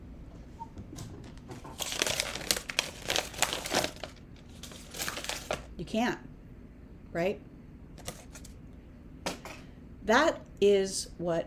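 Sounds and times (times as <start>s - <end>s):
paper being crushed, crumpled and crinkled: 1.7s - 5.7s
speech: 5.8s - 6.3s, 7.1s - 7.5s, 10.1s - 11.4s.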